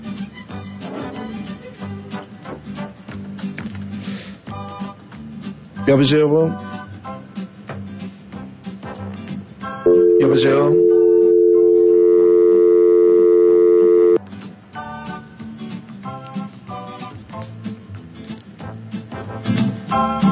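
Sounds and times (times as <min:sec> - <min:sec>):
busy music: 0:00.0 - 0:10.2, 0:14.2 - 0:20.3
speech: 0:05.8 - 0:06.7, 0:10.3 - 0:10.9
telephone line tone on a silent call: 0:09.9 - 0:14.2.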